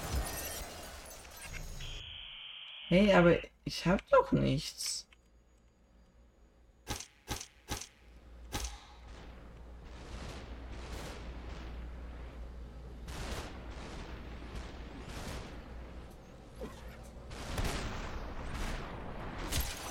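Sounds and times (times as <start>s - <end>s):
speech: 2.9s - 5.1s
video game gunfire with rapid bursts and cracks: 6.8s - 12.3s, 13.0s - 16.1s, 17.2s - 19.9s.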